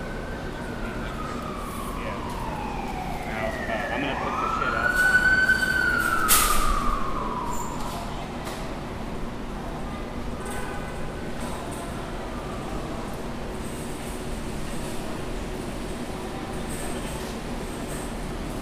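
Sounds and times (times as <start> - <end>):
siren outside a grocery store entrance: 0.0 - 8.3
steady low city rumble: 0.0 - 18.5.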